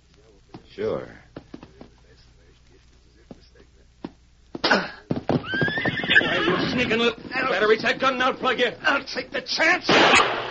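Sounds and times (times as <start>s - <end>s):
speech: 0.8s - 1.2s, 6.8s - 10.4s
bucking bronc horse neighing: 5.4s - 7.5s.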